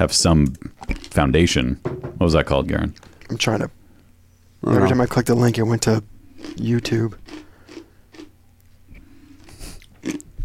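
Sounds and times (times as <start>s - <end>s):
speech: 0.0s - 3.8s, 4.6s - 7.3s
person chewing ice cubes: 0.8s - 1.2s, 6.4s - 8.4s, 9.4s - 10.3s.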